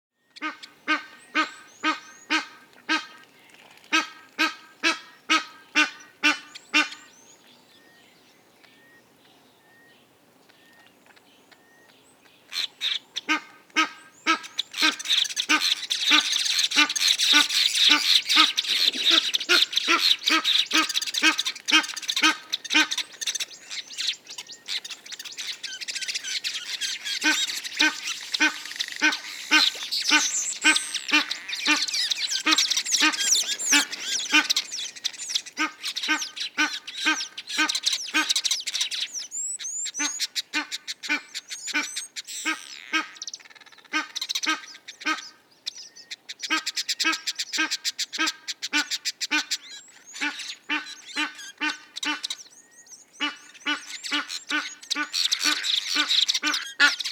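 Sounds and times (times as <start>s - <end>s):
Egyptian goose: 3.9s - 7.1s, 12.6s - 39.1s, 39.9s - 45.4s, 46.4s - 52.5s, 53.2s - 57.1s.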